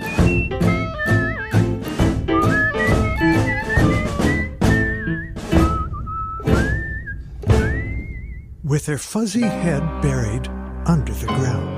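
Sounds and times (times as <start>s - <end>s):
person whistling a bright wavering tune: 0.0s - 8.6s
dull thumping beats: 0.0s - 8.7s
speech: 8.7s - 11.7s.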